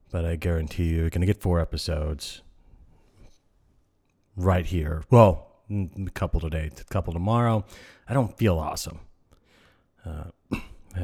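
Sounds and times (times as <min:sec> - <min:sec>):
speech: 0:00.1 - 0:02.5, 0:04.4 - 0:09.1, 0:10.0 - 0:11.0
person coughing into the microphone: 0:10.5 - 0:11.0.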